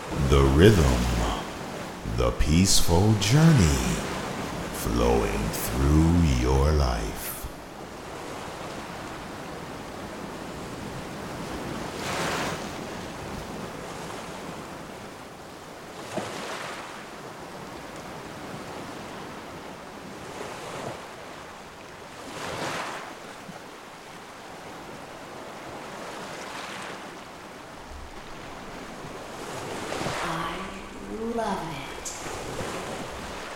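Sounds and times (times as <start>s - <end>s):
ocean waves rolling onto the shore: 0.0s - 33.5s
faint voice-like sound: 0.1s - 7.6s
speech: 0.3s - 1.1s, 2.2s - 4.1s, 4.8s - 7.3s.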